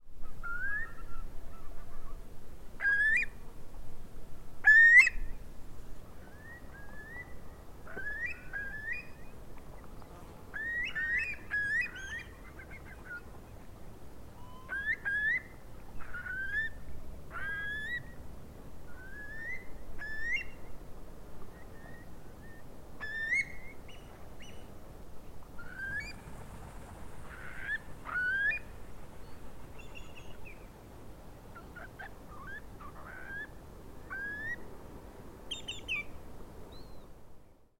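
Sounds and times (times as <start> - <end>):
Eurasian curlew Numenius arquata calling: 0.2 - 2.1, 2.8 - 3.4, 4.6 - 5.4, 6.2 - 9.3, 10.5 - 13.4, 14.4 - 18.2, 18.9 - 20.6, 21.6 - 24.7, 25.6 - 26.3, 27.2 - 30.7, 31.6 - 34.6, 35.5 - 36.1.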